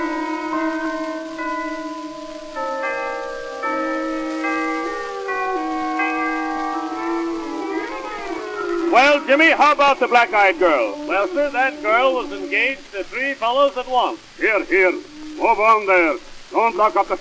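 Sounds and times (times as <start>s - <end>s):
church chimes playing a slow melody: 0.0s - 12.5s
speech: 9.2s - 17.1s.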